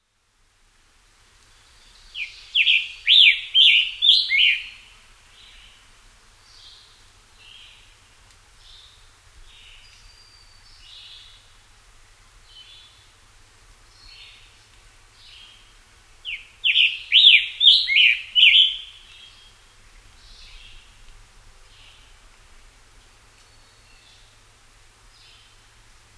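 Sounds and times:
scarlet tanager calling: 0:02.2 - 0:04.8, 0:16.2 - 0:19.2.

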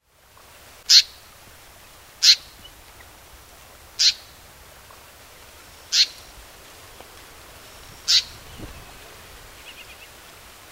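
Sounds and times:
grey fantail calling: 0:00.9 - 0:01.2, 0:02.2 - 0:02.8, 0:04.0 - 0:04.4, 0:05.9 - 0:06.3, 0:07.7 - 0:10.2.

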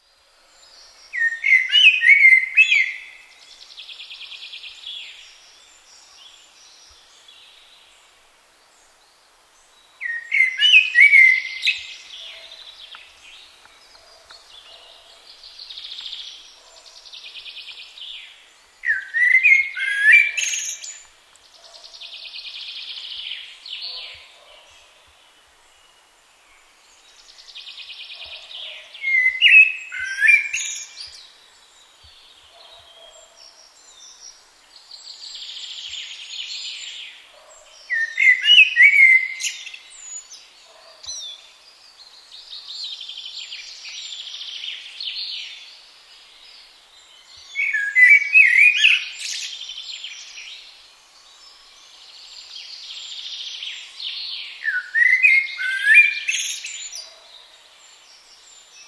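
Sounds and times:
blackbird: 0:00.0 - 0:08.0, 0:09.6 - 0:25.9, 0:26.6 - 0:58.8.

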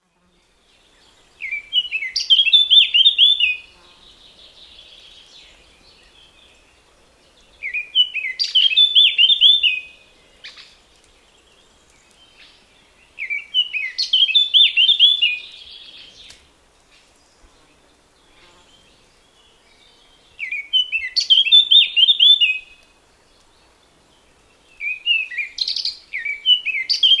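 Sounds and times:
blackcap singing: 0:01.4 - 0:03.6, 0:07.6 - 0:09.9, 0:13.2 - 0:16.4, 0:20.4 - 0:22.7, 0:24.8 - 0:27.1.

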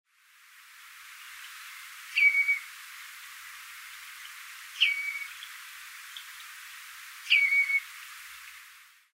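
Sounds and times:
redshank calling at night in flight: 0:01.4 - 0:02.8, 0:03.8 - 0:08.0.

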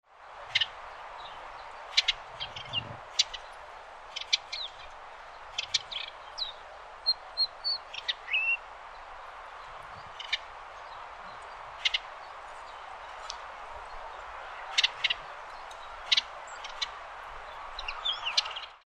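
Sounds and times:
Tristram's warbler singing: 0:00.5 - 0:18.8.

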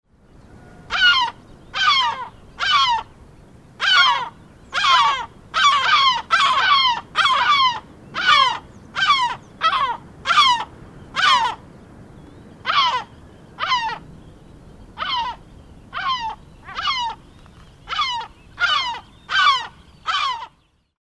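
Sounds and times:
yellow-legged gull: 0:00.6 - 0:03.1, 0:03.8 - 0:11.6, 0:12.6 - 0:14.1, 0:15.0 - 0:17.3, 0:17.9 - 0:20.6.

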